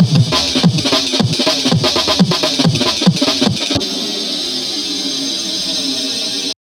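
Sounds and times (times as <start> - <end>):
drum loop break: 0.0 - 3.9.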